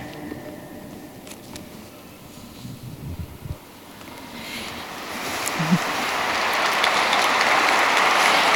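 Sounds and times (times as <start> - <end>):
low murmur of crowd: 0.0 - 8.5
large crowd of pilgrims and visitors applauding at a papal audience: 4.3 - 8.5.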